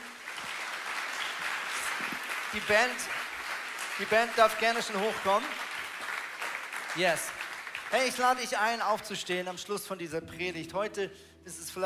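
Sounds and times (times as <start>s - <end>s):
audience applause in a church: 0.0s - 8.9s
speech: 2.5s - 3.2s, 4.0s - 5.6s, 6.9s - 11.8s.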